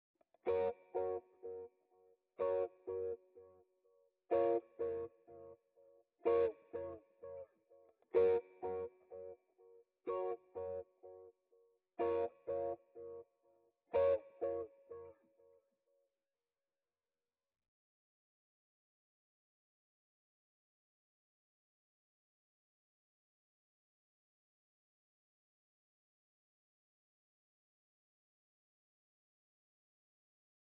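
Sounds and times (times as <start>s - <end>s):
guitar strike melody loop in A sharp minor at 125 BPM: 0.5s - 1.7s, 2.4s - 3.2s, 4.3s - 5.5s, 6.2s - 7.4s, 8.2s - 9.4s, 10.1s - 11.2s, 12.0s - 13.2s, 13.9s - 15.2s.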